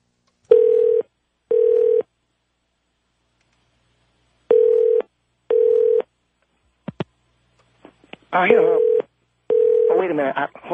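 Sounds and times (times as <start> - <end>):
telephone touch tones being dialed: 0.5 - 2.1, 4.5 - 6.1, 8.8 - 9.9
speech: 8.4 - 8.9, 10.0 - 10.7.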